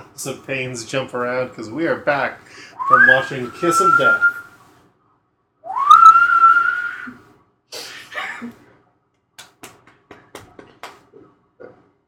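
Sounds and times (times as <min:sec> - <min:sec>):
speech: 0:00.2 - 0:04.4
person whistling a song hook: 0:02.8 - 0:04.5, 0:05.7 - 0:07.2.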